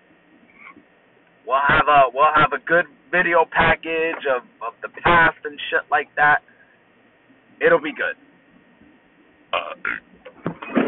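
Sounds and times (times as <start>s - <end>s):
speech: 1.5s - 6.5s, 7.6s - 8.2s, 9.5s - 10.1s
burps: 9.5s - 10.8s.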